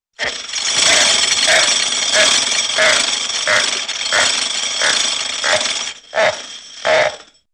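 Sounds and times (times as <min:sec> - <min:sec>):
cartoon rapid metallic clicks: 0:00.2 - 0:07.2
cartoon rhythmic circular creaks: 0:00.2 - 0:07.5.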